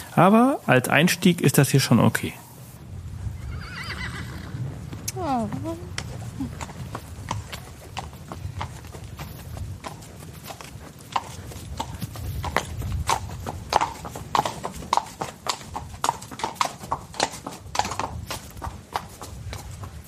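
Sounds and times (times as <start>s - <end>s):
speech: 0.2s - 2.4s
horse hooves clip-clopping during a ride in South Africa's Cape region: 2.0s - 20.0s
horse neighing during a ride in South Africa's Cape region: 3.4s - 5.4s.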